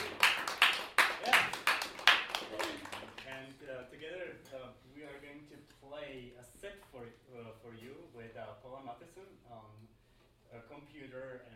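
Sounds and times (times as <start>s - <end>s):
small group clapping in a steady rhythm: 0.0s - 3.8s.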